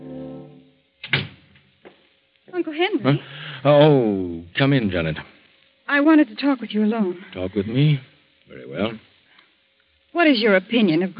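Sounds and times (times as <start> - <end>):
door thumping shut: 1.0 - 1.4
speech: 2.6 - 5.3, 5.9 - 9.1, 10.2 - 11.1.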